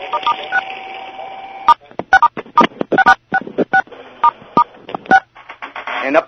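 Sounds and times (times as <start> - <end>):
phone keypad touch-tone beeps from pressing star six: 0.1 - 0.6, 1.7 - 5.3.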